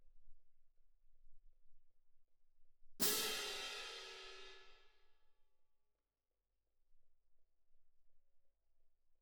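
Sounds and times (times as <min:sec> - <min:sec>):
cymbal: 0:03.0 - 0:04.8.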